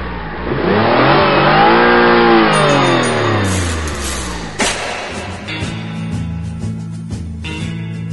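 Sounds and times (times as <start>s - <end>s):
car engine revving: 0.0s - 6.8s
sharp clunk: 3.0s - 6.0s.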